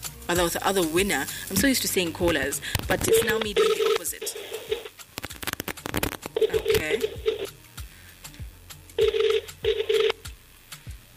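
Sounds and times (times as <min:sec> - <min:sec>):
speech: 0:00.3 - 0:04.4
outgoing telephone ringing tone: 0:03.0 - 0:04.9, 0:06.4 - 0:07.5, 0:09.0 - 0:10.2.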